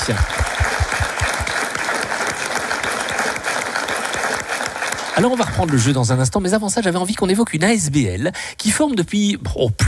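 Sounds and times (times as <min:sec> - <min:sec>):
room full of people clapping: 0:00.0 - 0:06.6
speech: 0:00.1 - 0:00.7, 0:05.2 - 0:09.8.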